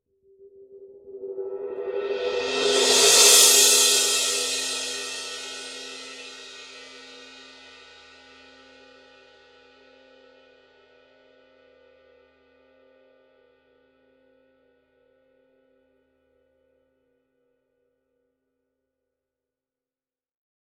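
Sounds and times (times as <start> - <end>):
heavy crash cymbal roll: 1.1 - 7.5.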